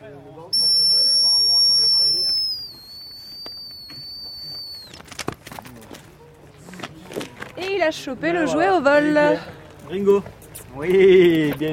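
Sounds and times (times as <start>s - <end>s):
dog handler's whistle blown to recall a dog: 0.5s - 5.0s
speech: 7.9s - 11.7s.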